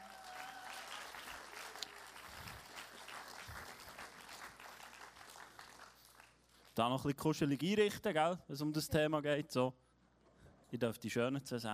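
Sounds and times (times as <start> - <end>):
audience applauding guests onto a stage: 0.0 - 6.4
speech: 6.8 - 9.8, 10.7 - 11.7.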